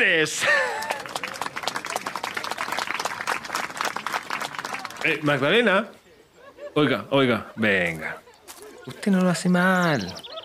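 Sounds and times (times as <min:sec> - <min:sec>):
speech: 0:00.0 - 0:00.8, 0:05.0 - 0:06.0, 0:06.8 - 0:10.3
crowd applauding: 0:00.0 - 0:05.6
laughter: 0:00.2 - 0:10.4.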